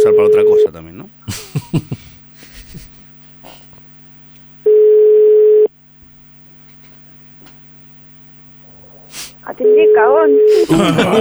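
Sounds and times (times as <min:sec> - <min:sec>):
laughter: 0:00.0 - 0:03.1, 0:10.5 - 0:11.1
speech: 0:00.2 - 0:02.0, 0:10.2 - 0:11.1
telephone ringing tone while a call is being placed: 0:04.7 - 0:05.7, 0:09.6 - 0:11.1.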